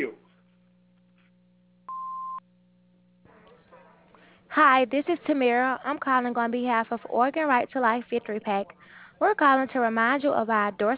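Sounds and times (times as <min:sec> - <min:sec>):
low telephone-line hum: 0:00.3 - 0:03.2
answering machine beep: 0:01.9 - 0:02.4
speech: 0:04.6 - 0:10.9.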